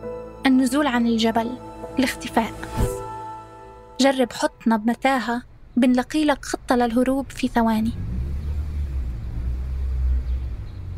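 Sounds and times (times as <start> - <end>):
speech: 0.4 - 2.9, 4.0 - 8.0
taxi engine rumbling: 6.8 - 10.9.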